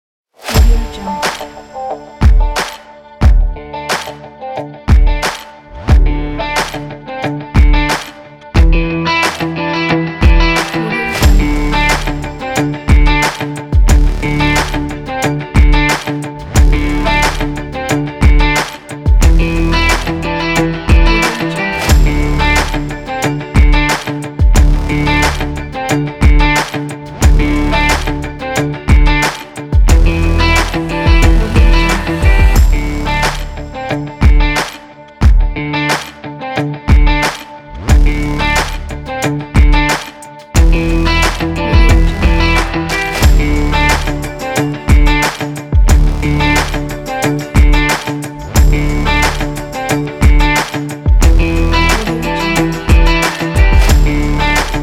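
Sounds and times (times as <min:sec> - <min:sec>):
corporate sport music: 0:00.4 - 0:54.8.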